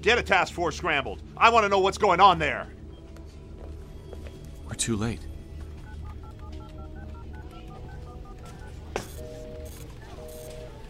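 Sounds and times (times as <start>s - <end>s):
speech: 0.0s - 2.8s, 4.7s - 5.3s
satellite phone keypad dialing beeps: 5.8s - 10.8s.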